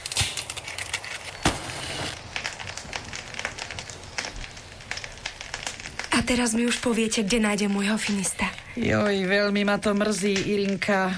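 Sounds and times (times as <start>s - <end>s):
fire being lit and crackling with sharp pops: 0.0s - 11.1s
steady rushing hiss of fire: 1.3s - 5.0s
speech: 6.2s - 11.1s.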